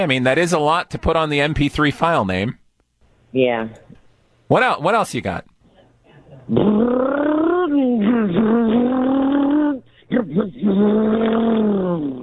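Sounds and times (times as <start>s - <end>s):
speech: 0.0s - 2.6s, 3.3s - 5.5s, 6.4s - 7.3s, 10.1s - 12.2s
person imitating a getaway car engine: 6.5s - 12.2s.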